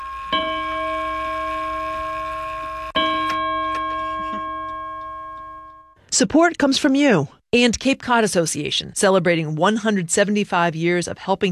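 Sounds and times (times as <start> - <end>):
clock chiming resonant bell tones: 0.0 - 6.0
speech: 6.2 - 11.5.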